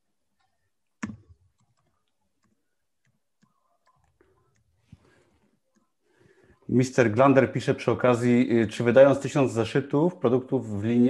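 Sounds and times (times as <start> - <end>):
keyboard typing: 0.4 - 4.8
speech: 6.7 - 11.0.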